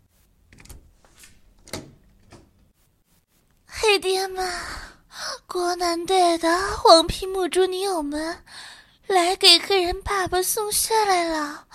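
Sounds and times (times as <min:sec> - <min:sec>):
door being opened with clunks and scraping knocks: 0:00.5 - 0:02.6
speech: 0:04.0 - 0:04.8, 0:05.5 - 0:08.5, 0:09.1 - 0:11.7.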